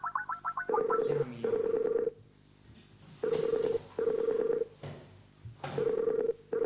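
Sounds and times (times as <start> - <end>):
short electronic telephone dialing beeps: 0.1 - 2.1, 3.2 - 4.6, 5.8 - 6.6.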